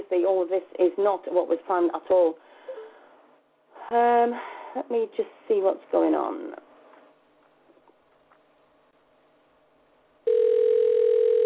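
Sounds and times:
speech: 0:00.1 - 0:02.5, 0:03.9 - 0:06.6
electronic phone-line ringing tone: 0:10.3 - 0:11.4.

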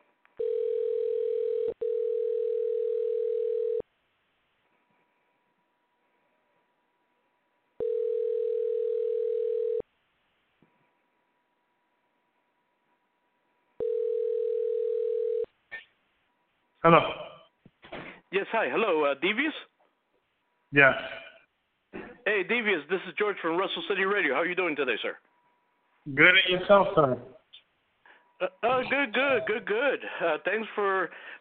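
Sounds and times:
telephone ringback tone on an outgoing call: 0:00.4 - 0:03.8, 0:07.8 - 0:09.8, 0:13.8 - 0:15.5
speech: 0:16.8 - 0:17.2, 0:18.3 - 0:19.7, 0:20.7 - 0:21.2, 0:22.4 - 0:25.3, 0:26.0 - 0:27.4, 0:28.4 - 0:31.4.

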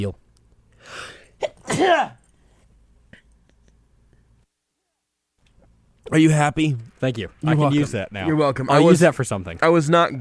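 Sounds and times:
speech: 0:00.0 - 0:00.2, 0:00.8 - 0:02.2, 0:06.0 - 0:10.2
person sneezing: 0:00.9 - 0:02.2.

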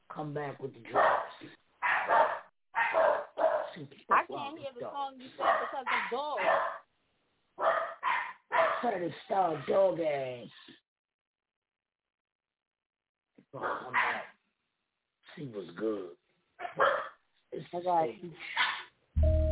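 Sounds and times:
speech: 0:00.2 - 0:01.6, 0:03.8 - 0:06.8, 0:08.8 - 0:10.8, 0:13.5 - 0:14.2, 0:15.4 - 0:16.2, 0:16.8 - 0:19.4
dog barking and yipping: 0:01.0 - 0:04.3, 0:05.2 - 0:06.8, 0:07.6 - 0:08.9, 0:13.6 - 0:14.3, 0:16.6 - 0:17.2, 0:18.5 - 0:18.9.

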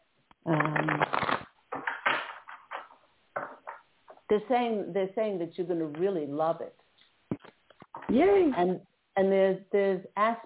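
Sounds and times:
speech: 0:00.4 - 0:00.9, 0:04.3 - 0:06.8, 0:08.1 - 0:10.4
deck of cards being shuffled during a card reading: 0:00.5 - 0:03.8.

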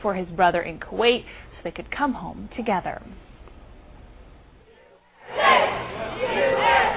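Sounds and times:
speech: 0:00.0 - 0:03.3
large crowd cheering and whooping at airport homecoming: 0:05.2 - 0:06.9.

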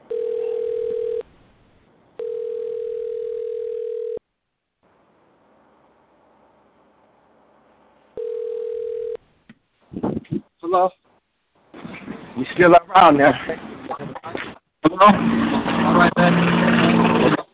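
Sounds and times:
telephone ringback tone while a number is dialed: 0:00.1 - 0:01.2, 0:02.2 - 0:04.2, 0:08.2 - 0:09.2
speech: 0:10.8 - 0:11.0, 0:12.4 - 0:14.1, 0:15.0 - 0:17.4.

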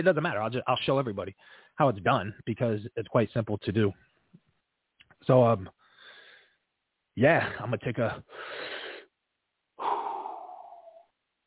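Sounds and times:
speech: 0:00.0 - 0:04.1, 0:05.2 - 0:05.8, 0:07.2 - 0:08.7
deep breath inhale and sighing exhale: 0:01.4 - 0:01.8, 0:05.8 - 0:06.7, 0:08.3 - 0:09.1, 0:09.8 - 0:11.1.

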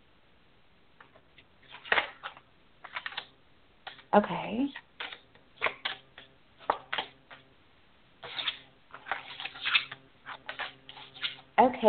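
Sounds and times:
tarot cards being flipped over for a reading: 0:01.0 - 0:04.1, 0:05.0 - 0:07.5, 0:08.2 - 0:11.5
speech: 0:04.1 - 0:04.8.

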